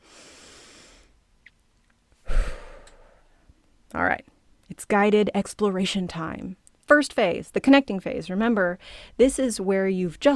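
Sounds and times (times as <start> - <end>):
speaker taking a big breath: 0.0 - 1.1, 2.2 - 3.5
speech: 3.9 - 10.3.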